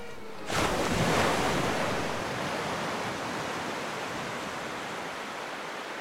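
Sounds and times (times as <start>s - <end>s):
ocean surf waves breaking: 0.0s - 5.9s.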